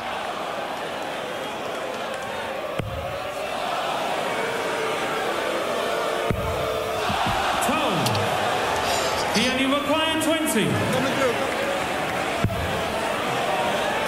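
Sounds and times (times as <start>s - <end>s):
large darts-match crowd cheering and roaring: 0.0s - 14.0s
sharp knocks: 6.3s - 8.2s
speech: 10.6s - 11.2s.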